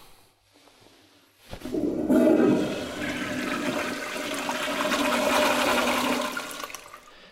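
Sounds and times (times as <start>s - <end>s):
toilet flushing: 1.6s - 7.3s.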